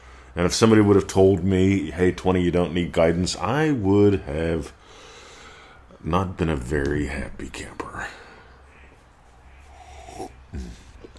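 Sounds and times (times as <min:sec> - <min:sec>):
speech: 0:00.4 - 0:04.8, 0:06.0 - 0:08.2
dog snorting as it walks by: 0:09.6 - 0:11.1.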